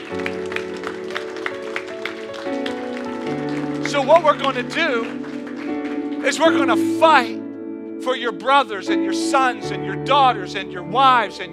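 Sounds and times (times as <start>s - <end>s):
audience clapping rhythmically: 0.0s - 7.4s
sustained organ-like chords: 0.0s - 11.5s
speech: 4.0s - 5.2s, 6.2s - 7.4s, 8.0s - 11.5s.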